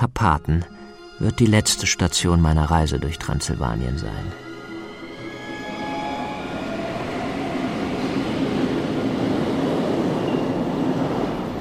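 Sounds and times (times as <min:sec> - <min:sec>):
speech: 0:00.0 - 0:04.5
faint high tonal squeals: 0:02.8 - 0:11.5
train rolling along the tracks: 0:04.3 - 0:11.5.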